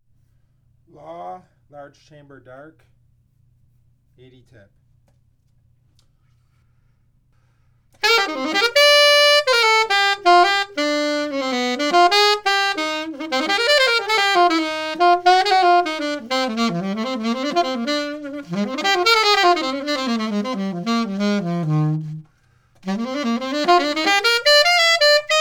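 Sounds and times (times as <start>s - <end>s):
alto jazz music: 8.0s - 25.3s.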